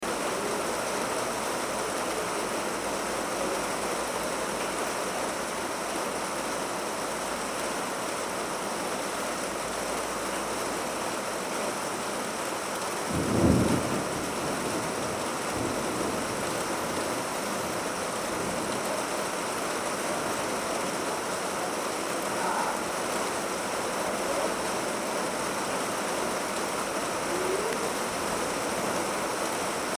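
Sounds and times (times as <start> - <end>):
rain on veranda: 0.0 - 29.9
thunder: 13.1 - 16.6.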